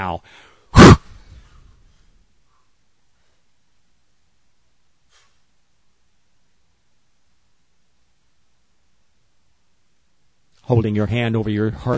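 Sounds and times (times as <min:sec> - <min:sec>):
speech: 0:00.0 - 0:00.9, 0:10.7 - 0:11.9
quick forceful burst of breath: 0:00.2 - 0:03.5, 0:05.0 - 0:05.5.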